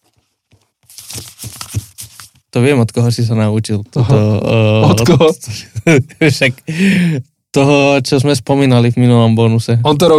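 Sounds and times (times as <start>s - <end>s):
paper letter rustling and crinkling: 0.0s - 2.5s
speech: 2.6s - 10.1s
laughter: 4.0s - 6.6s.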